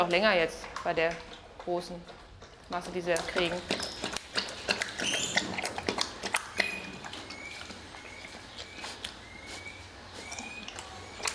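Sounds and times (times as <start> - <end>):
speech: 0.0 - 3.9
bear lapping up soup with its tongue: 2.9 - 11.3
faint birds chirping: 3.3 - 11.3.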